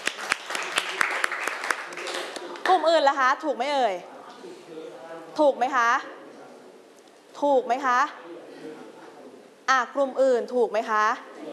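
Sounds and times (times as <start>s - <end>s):
students applauding a classmate in a classroom: 0.0s - 2.8s
steady hum: 0.0s - 11.5s
speech: 2.8s - 6.1s, 7.4s - 8.2s, 9.7s - 11.5s.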